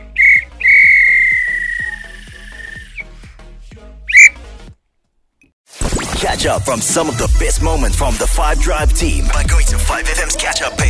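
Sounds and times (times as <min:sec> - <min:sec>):
referee's whistle blasts at end of match: 0:00.2 - 0:03.0, 0:04.1 - 0:04.4
speech: 0:06.4 - 0:10.8.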